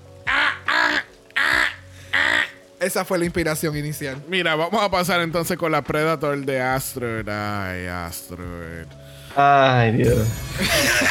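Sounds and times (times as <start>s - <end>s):
person imitating duck quacks: 0.2s - 2.6s
speech: 2.8s - 11.0s
laughter: 10.5s - 11.0s.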